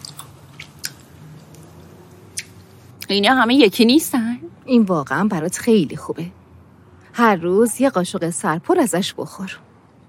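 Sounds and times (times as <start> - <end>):
person chewing olives with pits: 0.0 - 1.7
speech: 3.1 - 6.4, 7.2 - 9.7.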